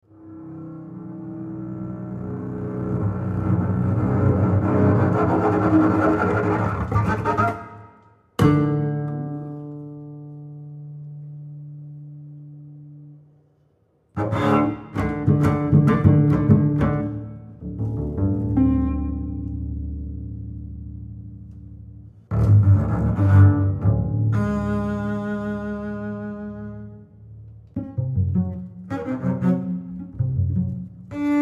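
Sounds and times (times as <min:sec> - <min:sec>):
double bass solo: 0:00.0 - 0:13.3, 0:14.1 - 0:31.4.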